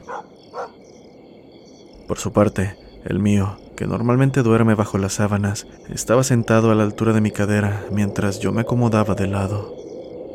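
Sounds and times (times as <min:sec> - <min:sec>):
dog barking outside a caravan: 0:00.0 - 0:00.8
speech: 0:02.1 - 0:09.8.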